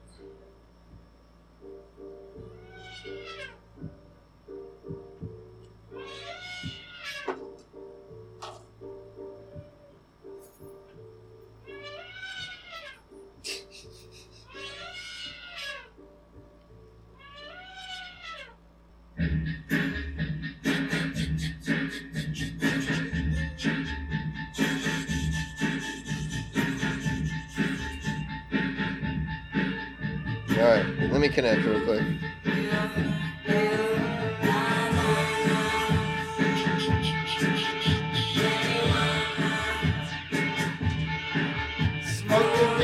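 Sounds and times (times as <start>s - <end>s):
low steady hum: 0.0s - 42.8s
cat meowing: 2.5s - 3.6s, 6.0s - 7.4s, 11.6s - 13.0s, 14.4s - 16.0s, 17.2s - 18.6s
speech: 31.4s - 32.2s.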